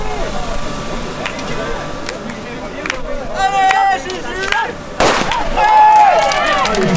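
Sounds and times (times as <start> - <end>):
people talking: 0.0 - 6.9
starting pistol shot: 5.0 - 5.6.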